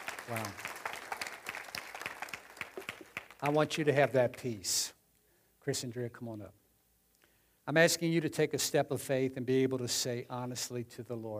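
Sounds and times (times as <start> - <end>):
audience applauding: 0.0 - 4.0
speech: 0.3 - 0.7, 3.4 - 5.0, 5.6 - 6.6, 7.7 - 11.3.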